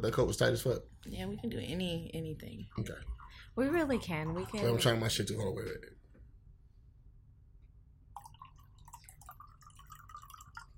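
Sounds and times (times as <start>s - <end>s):
speech: 0.0s - 6.0s
water pouring and trickling with gurgling splash and drips: 0.2s - 5.2s, 8.2s - 10.7s.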